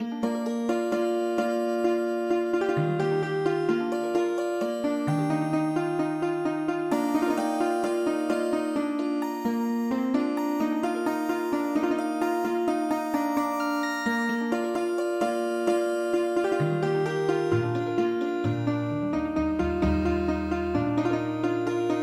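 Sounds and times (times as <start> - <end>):
Turkish healing harp music: 0.0 - 22.0.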